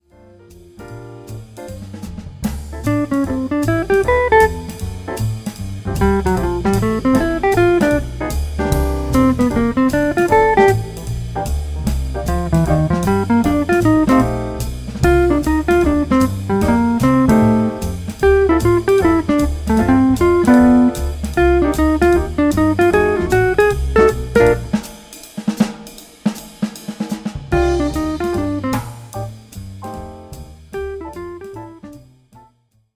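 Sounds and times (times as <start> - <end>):
rhythm section guitar: 0.0 - 25.1, 27.4 - 32.5.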